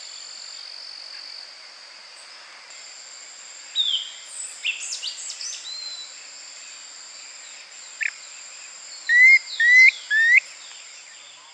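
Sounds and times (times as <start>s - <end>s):
steady high insect hiss: 0.0s - 11.5s
brief faint chirp: 3.8s - 11.5s
Phyllomyias fasciatus brevirostris planalto tyrannulet call: 9.1s - 10.4s.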